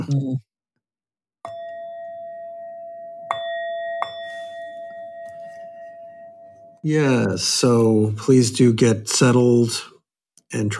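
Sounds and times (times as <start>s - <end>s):
speech: 0.1s - 0.5s, 6.8s - 9.9s, 10.5s - 10.7s
Tibetan bell struck and ringing: 1.5s - 6.8s.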